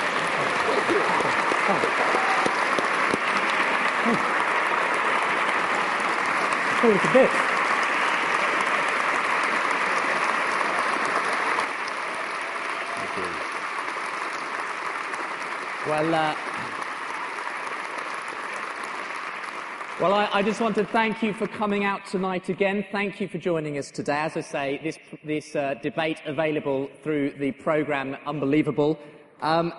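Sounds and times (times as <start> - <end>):
room full of people applauding: 0.0 - 22.0
speech: 4.1 - 4.3, 6.8 - 7.4, 15.9 - 16.5, 20.0 - 29.7.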